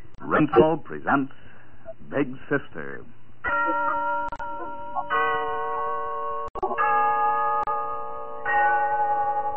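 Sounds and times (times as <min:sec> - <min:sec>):
speech: 0:00.4 - 0:01.4, 0:02.1 - 0:03.2
large town hall clock bell chiming: 0:03.5 - 0:09.5.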